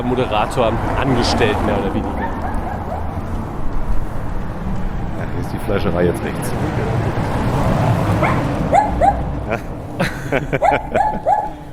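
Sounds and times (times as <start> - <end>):
speech: 0.0 - 2.2, 5.3 - 8.8, 10.3 - 11.5
steady outdoor noise: 0.0 - 11.7
small dog yapping behind a gate: 2.2 - 3.2, 8.2 - 9.2, 10.6 - 11.6
laughter: 9.2 - 11.7.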